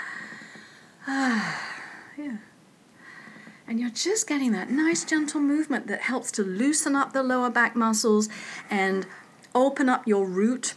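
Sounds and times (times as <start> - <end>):
deep breath in and out: 0.0 - 2.2, 3.0 - 3.7, 8.3 - 9.4
speech: 3.7 - 10.7.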